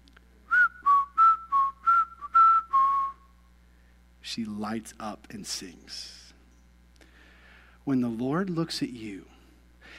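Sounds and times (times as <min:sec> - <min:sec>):
person whistling a tune: 0:00.5 - 0:03.3
speech: 0:04.4 - 0:06.2, 0:07.9 - 0:09.9.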